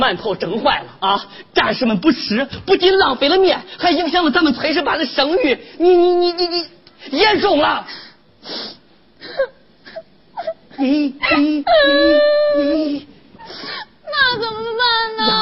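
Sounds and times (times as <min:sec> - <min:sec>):
speech: 0:00.0 - 0:09.5, 0:10.8 - 0:15.4
person crying loudly with sobs and wailing moans: 0:09.2 - 0:15.4.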